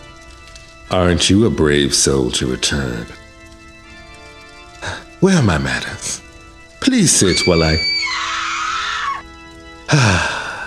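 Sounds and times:
speech: 0.9s - 3.2s, 5.2s - 6.2s, 6.9s - 8.4s, 9.9s - 10.3s
piercing shrieks: 7.0s - 9.2s.

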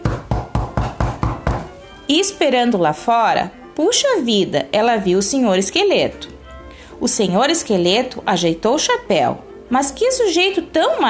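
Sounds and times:
knocking on a wooden door: 0.0s - 1.7s
speech: 2.1s - 6.3s, 7.0s - 11.0s.

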